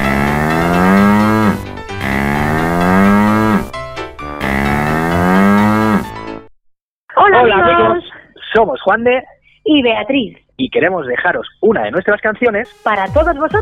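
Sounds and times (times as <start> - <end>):
cow mooing: 0.0 - 3.7, 4.4 - 6.1
speech: 8.6 - 13.6.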